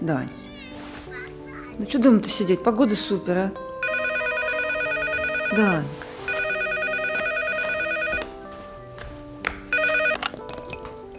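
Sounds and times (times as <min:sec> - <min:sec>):
speech: 0:00.0 - 0:00.4, 0:01.8 - 0:03.7, 0:05.5 - 0:06.0
telephone ringing at home with a fast electronic trill: 0:03.8 - 0:08.3, 0:09.7 - 0:10.4.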